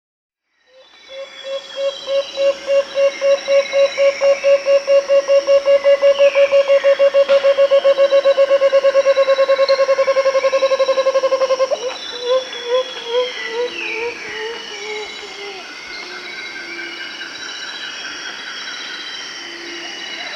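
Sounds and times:
Striated Antthrush Chamaeza nobilis calling in Peru: 0.8 - 16.8.

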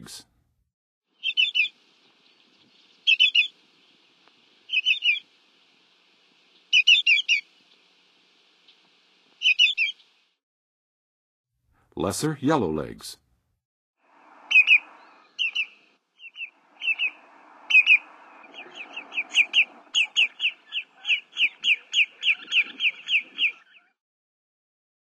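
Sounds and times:
Greater Yellowlegs calling in the Western USA: 1.2 - 1.8, 3.0 - 3.6, 4.7 - 5.3, 6.7 - 7.5, 9.4 - 10.1, 14.4 - 24.0.

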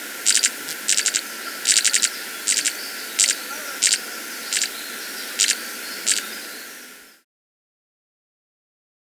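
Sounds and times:
Viridian metaltail subspecies primolinus buzzy crackling calls in Ecuador: 0.1 - 7.0.

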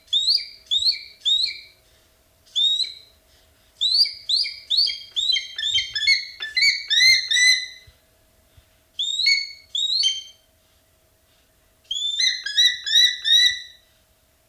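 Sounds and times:
black-and-white hawk-eagle calling in piercing whistled notes: 0.0 - 1.8, 2.5 - 3.2, 3.8 - 7.9, 9.0 - 10.5, 11.9 - 13.8.

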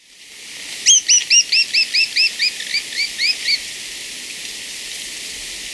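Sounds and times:
Black-crested tit-tyrant calling short high upslurred notes in Ecuador: 0.9 - 3.6.

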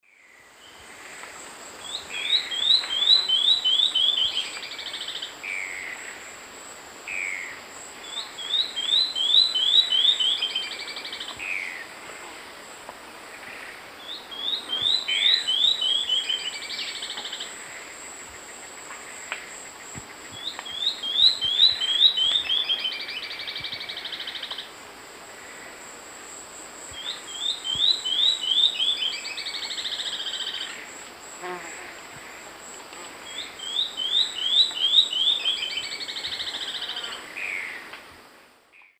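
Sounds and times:
Sclerurus mexicanus song in South American eastern lowlands: 1.8 - 5.8, 7.1 - 11.8, 14.0 - 17.5, 20.0 - 24.7, 26.9 - 30.8, 33.2 - 37.8.

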